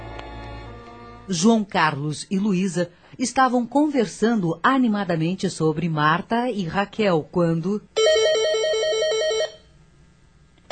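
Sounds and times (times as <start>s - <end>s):
speech: 1.3s - 8.0s
telephone ringing with fast warbling electronic trill: 8.0s - 9.7s.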